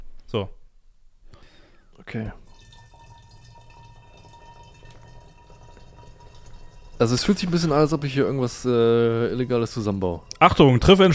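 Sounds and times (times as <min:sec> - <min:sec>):
speech: 0:00.3 - 0:00.6, 0:02.0 - 0:02.4, 0:07.0 - 0:11.1
about one liter of hot water pouring into a container: 0:02.3 - 0:11.1.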